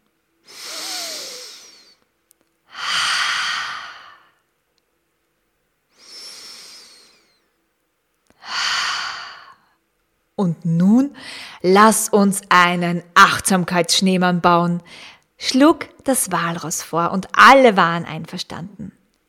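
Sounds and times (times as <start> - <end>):
slow deep breathing: 0.4 - 2.0, 2.7 - 4.4, 5.9 - 7.4, 8.4 - 9.8
speech: 10.4 - 19.0.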